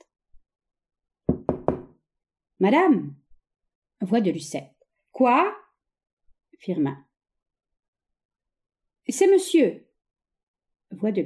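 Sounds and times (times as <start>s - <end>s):
knocking on a wooden door: 1.3s - 2.0s
speech: 2.6s - 3.2s, 4.0s - 5.6s, 6.6s - 7.0s, 9.1s - 9.8s, 10.9s - 11.2s.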